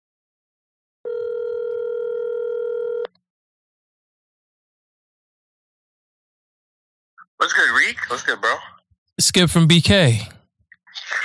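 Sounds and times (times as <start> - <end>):
telephone ringback tone from an outgoing call: 1.0 - 3.1
speech: 7.4 - 10.4.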